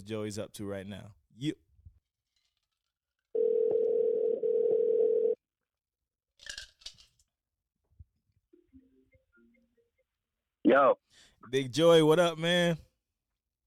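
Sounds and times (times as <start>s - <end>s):
speech: 0.0s - 1.7s, 10.7s - 12.9s
ringing tone of an outgoing phone call: 3.3s - 5.4s.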